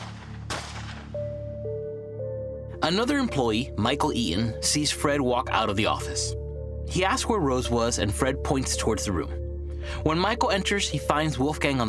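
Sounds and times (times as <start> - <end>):
single sharp gunshot: 0.0 - 1.3
speech: 2.8 - 11.8.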